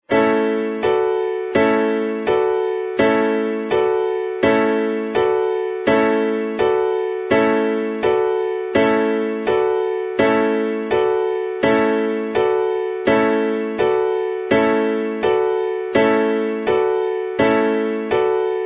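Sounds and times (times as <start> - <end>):
piano piece: 0.0 - 18.6.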